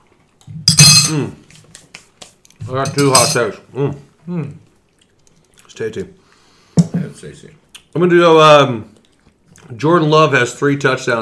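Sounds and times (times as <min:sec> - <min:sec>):
glasses clinking together in a toast: 0:00.7 - 0:01.3, 0:02.8 - 0:03.6
speech: 0:01.1 - 0:01.4, 0:02.7 - 0:04.6, 0:05.8 - 0:06.2, 0:07.2 - 0:08.9, 0:09.6 - 0:11.2.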